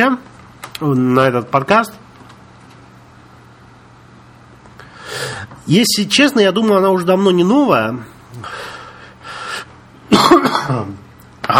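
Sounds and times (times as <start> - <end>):
speech: 0.0 - 2.0, 5.7 - 8.7
person coughing despite taking medicine: 10.1 - 11.0.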